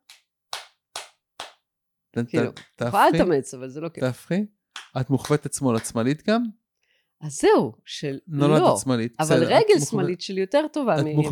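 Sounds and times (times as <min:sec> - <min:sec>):
hand claps with reversed hand position: 0:00.0 - 0:01.6, 0:02.4 - 0:03.3, 0:04.7 - 0:06.1
speech: 0:02.1 - 0:06.6, 0:07.2 - 0:11.3.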